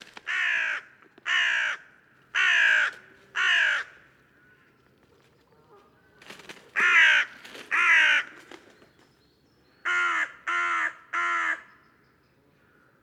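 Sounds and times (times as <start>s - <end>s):
carrion crow cawing: 0.3s - 4.7s, 6.8s - 8.4s, 9.9s - 11.7s.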